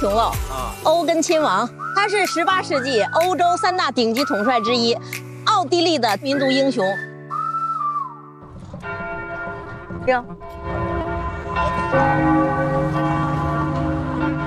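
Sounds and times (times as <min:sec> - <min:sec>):
speech: 0:00.0 - 0:07.1, 0:10.1 - 0:10.8, 0:11.6 - 0:12.8
outdoor church bells ringing across a city: 0:08.8 - 0:14.4.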